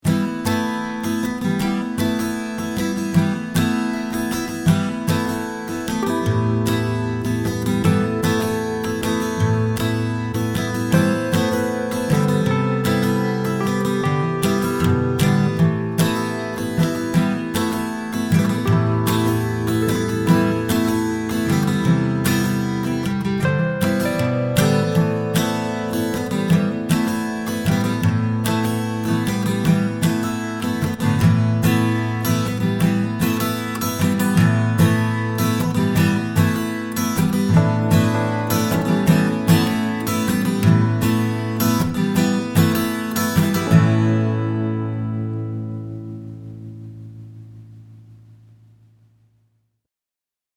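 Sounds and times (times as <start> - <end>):
Wurlitzer electric piano: 0.1 - 47.4.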